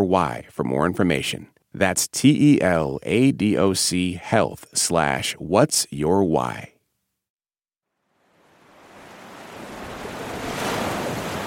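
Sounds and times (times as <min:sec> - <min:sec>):
speech: 0:00.1 - 0:06.7
Atlantic Ocean waves washing onto a shore at San Luis Senegal: 0:08.0 - 0:11.4.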